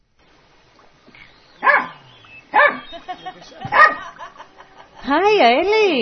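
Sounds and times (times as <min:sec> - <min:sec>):
dog barking: 0:01.6 - 0:03.0, 0:03.7 - 0:04.2
laughter: 0:02.8 - 0:05.4
speech: 0:05.1 - 0:05.9.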